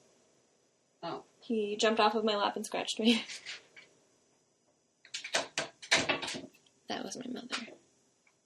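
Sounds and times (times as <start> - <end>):
speech: 1.0 - 3.6, 7.0 - 7.8
door abruptly opened without a knock, banging and rattling: 5.2 - 6.6.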